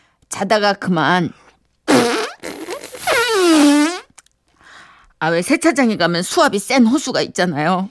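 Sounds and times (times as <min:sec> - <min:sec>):
speech: 0:00.4 - 0:02.1, 0:05.2 - 0:07.8
loud comical fart sound effect: 0:01.9 - 0:04.1.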